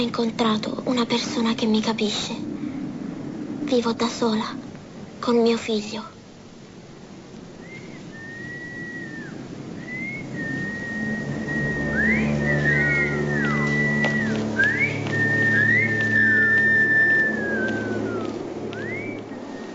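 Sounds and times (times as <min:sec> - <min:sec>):
speech: 0:00.0 - 0:02.5, 0:03.7 - 0:04.6, 0:05.2 - 0:06.2
person whistling a slow melodic tune in a film scene: 0:07.6 - 0:19.7.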